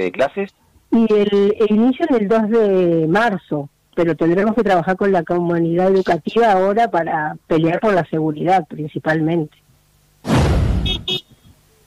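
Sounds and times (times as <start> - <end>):
speech: 0.0 - 9.6
car horn honking: 10.8 - 11.3.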